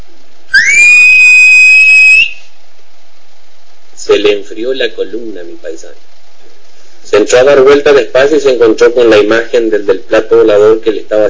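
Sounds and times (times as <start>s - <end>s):
eerie high-pitched ghostly whistle: 0.5s - 2.5s
speech: 4.2s - 6.1s, 7.2s - 11.2s.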